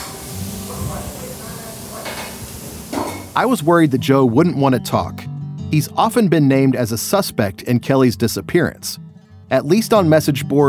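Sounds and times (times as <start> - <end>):
grill sizzling at the back of a burger eatery: 0.0 - 4.4
faint customer voices murmuring indistinctly: 0.6 - 2.6
speech: 3.4 - 10.6.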